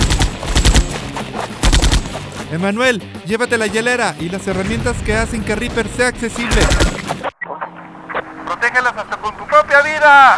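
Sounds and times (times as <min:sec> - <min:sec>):
smoking rifle firing across a battlefield: 0:00.0 - 0:02.4, 0:06.5 - 0:07.1
speech: 0:02.5 - 0:07.3, 0:08.8 - 0:10.3.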